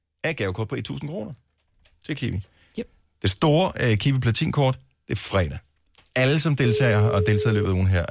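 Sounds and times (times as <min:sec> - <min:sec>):
speech: 0:00.3 - 0:01.5, 0:02.1 - 0:08.1
telephone keypad dialing tones: 0:06.7 - 0:07.8.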